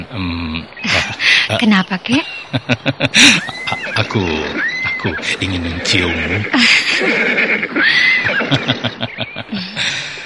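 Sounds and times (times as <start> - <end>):
laughter: 0.0 - 10.2
speech: 0.1 - 10.1
horse whinnying and neighing with snorts: 3.3 - 8.9.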